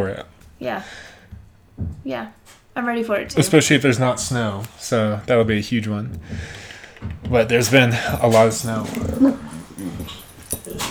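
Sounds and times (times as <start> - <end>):
speech: 0.0 - 1.1, 2.0 - 10.8
rustling: 0.0 - 10.8
dog whimpering and whining: 7.6 - 10.8.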